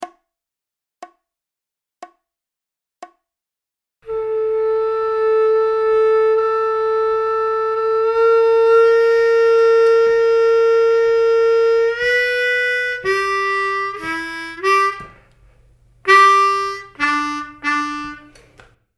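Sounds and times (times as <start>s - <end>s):
harmonica licks over a V IV I progression: 4.1s - 18.7s.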